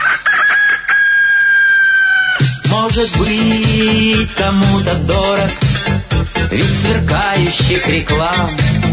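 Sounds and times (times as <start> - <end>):
rooster crowing: 0.0 - 2.6
speech: 3.0 - 5.7, 6.5 - 8.8.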